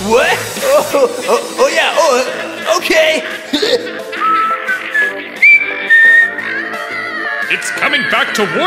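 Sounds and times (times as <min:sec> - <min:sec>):
speech: 0:00.1 - 0:04.0, 0:07.5 - 0:08.6
person whistling a wavering sliding tune: 0:04.2 - 0:06.6.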